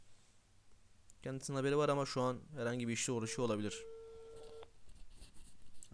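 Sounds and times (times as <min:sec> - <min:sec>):
faint noise: 0:00.0 - 0:05.9
speech: 0:01.2 - 0:04.0
phone's outgoing ringing tone from a call placed through a chat app: 0:02.9 - 0:04.7
soft rustling: 0:04.0 - 0:05.9.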